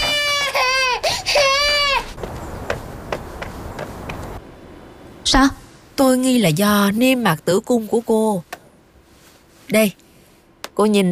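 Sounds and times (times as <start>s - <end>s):
baby girl crying in high wailing bursts: 0.0s - 2.2s
speech: 5.3s - 8.5s, 9.7s - 10.0s, 10.8s - 11.1s.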